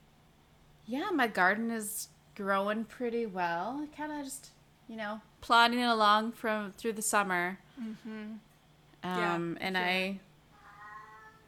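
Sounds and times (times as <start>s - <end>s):
speech: 0.9s - 10.3s
cat meowing: 10.6s - 11.4s.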